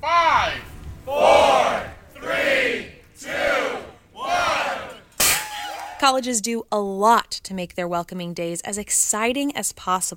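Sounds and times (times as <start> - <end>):
university staff and upperclassmen cheering and shouting: 0.0 - 6.0
speech: 6.1 - 10.1.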